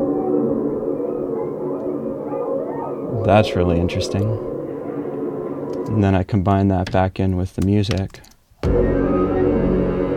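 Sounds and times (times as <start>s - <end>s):
grackle calls: 0.0s - 6.1s
layered coyote howls: 0.0s - 6.2s, 8.7s - 10.1s
speech: 3.2s - 4.5s, 5.9s - 8.9s.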